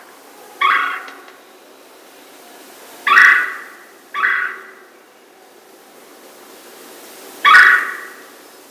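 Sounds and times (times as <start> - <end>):
red-bellied woodpecker giving rolling burry churr calls: 0.6 - 1.3, 3.0 - 4.9, 7.4 - 8.2.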